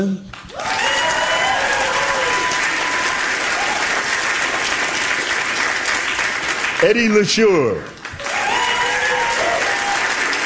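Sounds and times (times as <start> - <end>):
speech: 0.0 - 0.7, 6.8 - 8.0
audience applause as participants are introduced: 0.3 - 10.4
whoops from the audience: 0.5 - 3.9, 8.2 - 10.3
audience cheering as participants are introduced: 0.5 - 5.2, 8.1 - 10.4.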